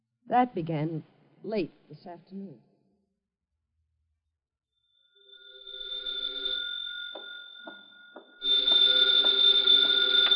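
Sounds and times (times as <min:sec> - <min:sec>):
speech: 0:00.3 - 0:02.7
telephone bell ringing: 0:04.8 - 0:10.3.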